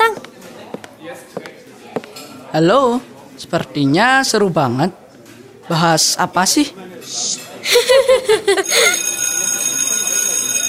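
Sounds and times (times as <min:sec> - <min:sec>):
people chattering: 0:00.0 - 0:10.6
speech: 0:02.5 - 0:05.0, 0:05.7 - 0:09.1
person chuckling: 0:07.7 - 0:09.0
school bell ringing: 0:08.6 - 0:10.6.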